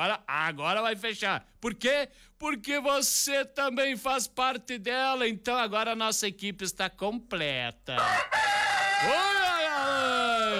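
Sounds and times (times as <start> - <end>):
speech: 0.0 - 10.1
rooster crowing on a video: 8.0 - 10.5.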